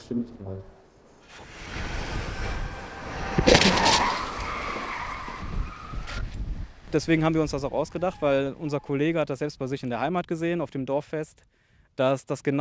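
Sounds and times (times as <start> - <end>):
speech: 0.1 - 1.6, 6.9 - 12.6
prolonged scraping and skidding after crash: 1.1 - 9.1
loud crunching crash of truck into car barrier: 1.2 - 8.6
truck engine roaring during a crash test: 1.2 - 9.0.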